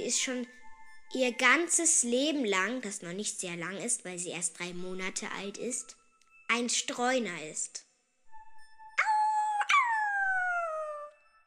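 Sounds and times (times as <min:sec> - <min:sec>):
speech: 0:00.1 - 0:07.8
dog whining and howling: 0:09.0 - 0:11.1.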